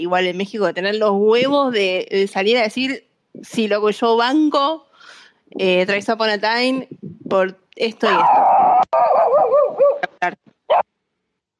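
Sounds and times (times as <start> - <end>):
speech: 0.0 - 9.6
dog short sharp yelps: 8.1 - 10.8
dog barking outdoors on the street: 9.0 - 10.1.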